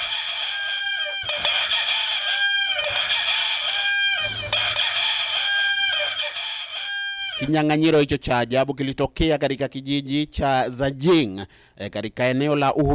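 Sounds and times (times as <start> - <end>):
roosters crowing at a crowing contest in a village in Hubei, China: 0.0 - 7.5
speech: 7.4 - 12.9.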